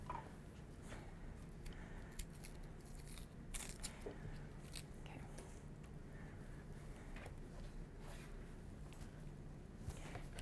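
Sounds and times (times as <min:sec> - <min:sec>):
quiet room hum: 0:00.0 - 0:10.4
papery onion skin peeling: 0:01.5 - 0:05.0.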